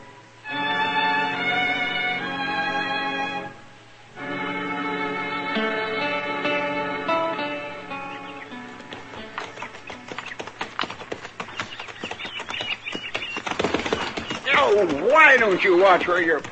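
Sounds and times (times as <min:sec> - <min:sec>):
sustained tonal music: 0:00.0 - 0:10.4
horse hooves clip-clopping: 0:08.2 - 0:16.4
speech: 0:15.3 - 0:16.4.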